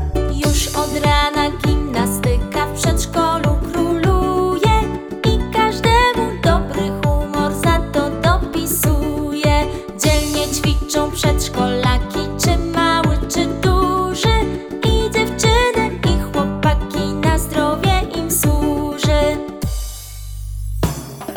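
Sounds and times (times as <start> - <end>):
song with vocals: 0.0 - 19.8.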